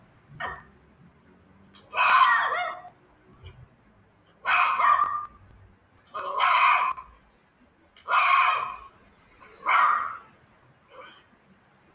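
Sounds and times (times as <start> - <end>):
dog barking: 0.4 - 0.7, 1.9 - 3.0, 4.4 - 5.4, 6.2 - 7.1, 8.1 - 8.9, 9.6 - 10.3.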